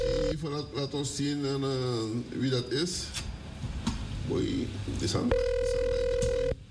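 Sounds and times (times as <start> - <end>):
telephone ringing for an incoming call to a studio: 0.0 - 0.4, 5.3 - 6.6
speech: 0.4 - 3.3, 4.3 - 5.6.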